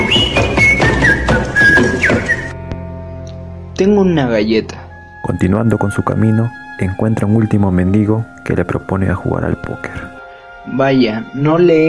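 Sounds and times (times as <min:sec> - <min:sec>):
soldier whistling a simple wavering tune: 0:00.0 - 0:02.6
steady drumbeat played by a beggar: 0:00.0 - 0:02.6
speech: 0:03.8 - 0:11.8.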